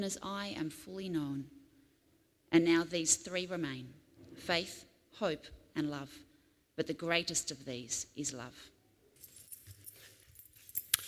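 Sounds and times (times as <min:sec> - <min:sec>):
speech: 0:00.0 - 0:01.6, 0:02.5 - 0:08.8
Mazda car keys jangling: 0:09.2 - 0:11.0.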